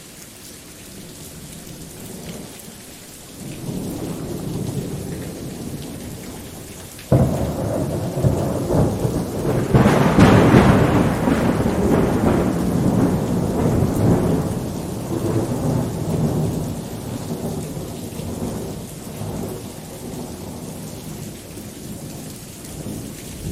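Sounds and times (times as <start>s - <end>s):
rain hissing: 0.0s - 23.4s
distant thunder rumbling: 3.4s - 23.4s.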